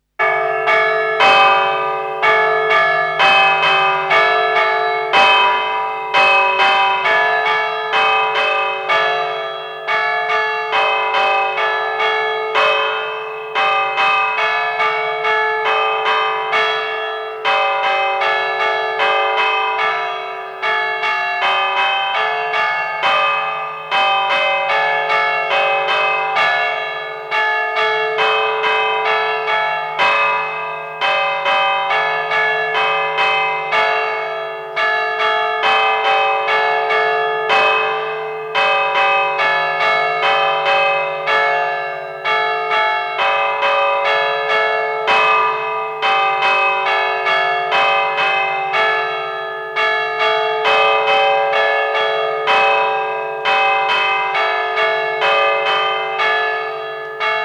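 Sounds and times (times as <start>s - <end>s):
bells: 0.0s - 57.4s.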